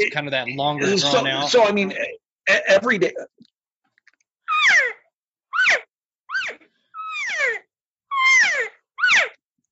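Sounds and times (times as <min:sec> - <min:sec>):
speech: 0:00.0 - 0:03.4
cat mewing and chirping: 0:04.5 - 0:09.4.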